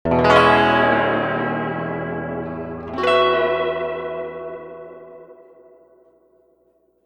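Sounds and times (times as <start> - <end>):
tremolo chords through a medium 3-spring reverb tank: 0.1 - 6.0.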